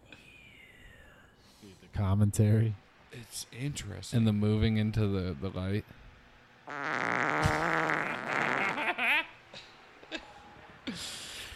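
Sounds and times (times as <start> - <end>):
speech: 1.6 - 6.0
loud drawn-out fart with wobbling buzzy pitch: 6.7 - 9.2.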